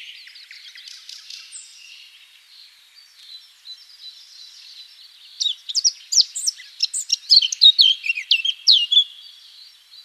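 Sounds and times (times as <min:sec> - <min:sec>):
Eurasian blackcap Sylvia atricapilla song: 0:00.0 - 0:10.0.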